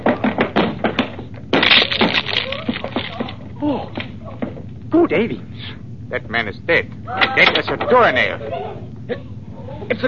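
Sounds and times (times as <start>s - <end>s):
locked door being forced open: 0.0s - 4.6s
speech: 3.6s - 4.0s, 5.0s - 9.3s, 9.9s - 10.0s.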